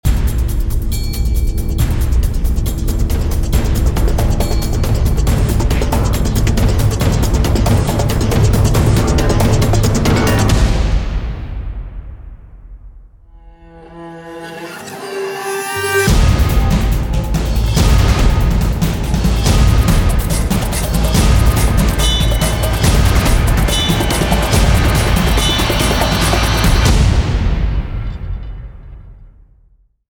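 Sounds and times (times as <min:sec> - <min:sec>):
epic action trailer music: 0:00.1 - 0:29.1.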